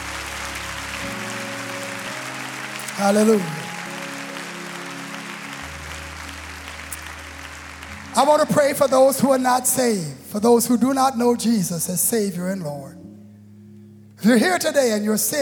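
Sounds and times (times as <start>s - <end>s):
audience clapping in praise to God: 0.0s - 9.5s
speech: 3.0s - 3.6s, 8.2s - 13.1s, 14.2s - 15.4s.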